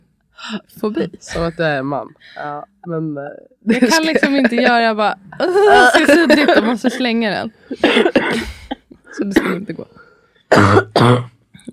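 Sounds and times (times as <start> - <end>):
speech: 0.5 - 8.6, 9.2 - 11.3
laughter: 3.7 - 7.1
harsh coughs: 7.7 - 9.7, 10.5 - 11.4.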